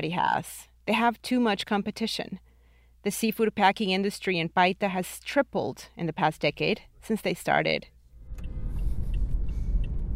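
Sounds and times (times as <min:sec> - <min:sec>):
speech: 0:00.0 - 0:08.5
car driving heard from inside the cabin: 0:08.2 - 0:10.1.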